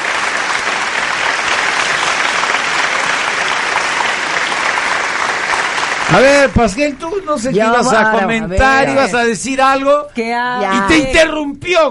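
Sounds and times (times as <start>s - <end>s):
crowd applauding: 0.0s - 9.1s
speech: 6.1s - 11.8s.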